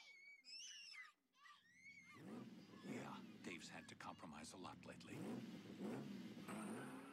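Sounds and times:
sports car engine revving: 2.2s - 7.1s
speech: 3.6s - 7.0s.

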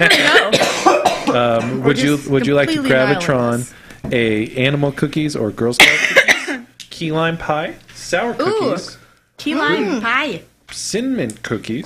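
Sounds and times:
speech: 0.0s - 0.3s, 1.9s - 6.2s, 7.0s - 11.8s
harsh coughing after smoking: 0.0s - 1.8s, 5.8s - 6.7s.

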